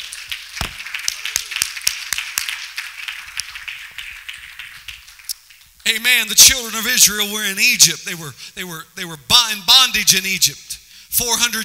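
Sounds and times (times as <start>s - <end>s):
audience clapping hands: 0.0s - 6.6s
speech: 5.9s - 11.6s.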